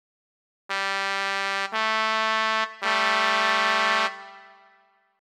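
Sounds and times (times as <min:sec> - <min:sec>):
organ trumpet stop playing dissonant G2 and A2 notes: 0:00.7 - 0:04.8.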